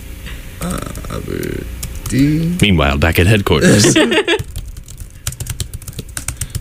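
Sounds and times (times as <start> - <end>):
low rumbling hum: 0.0 - 6.6
speech: 0.6 - 4.5
laughter: 3.6 - 4.4
typing on a computer keyboard: 4.4 - 6.6.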